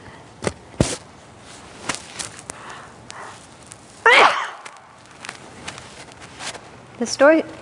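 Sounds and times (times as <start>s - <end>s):
faint clicks and rustles: 1.4s - 4.0s, 4.6s - 7.5s
loud sneeze: 4.0s - 4.7s
speech: 7.0s - 7.5s.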